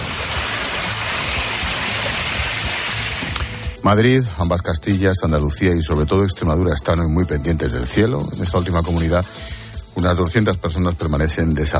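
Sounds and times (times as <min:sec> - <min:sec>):
fast-flowing floodwater rushing into orchard: 0:00.0 - 0:03.7
speech: 0:03.8 - 0:11.7.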